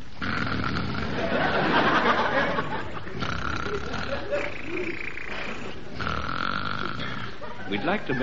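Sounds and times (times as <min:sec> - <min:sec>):
man imitating loud snoring: 0:00.0 - 0:01.4, 0:02.6 - 0:07.4
laughter: 0:01.1 - 0:05.6, 0:07.0 - 0:08.2
speech: 0:07.8 - 0:08.2.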